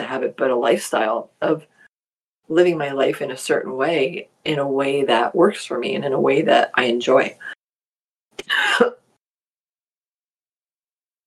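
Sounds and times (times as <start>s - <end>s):
speech: 0.1s - 1.8s, 2.5s - 7.6s, 8.4s - 9.0s
person coughing: 8.4s - 9.0s.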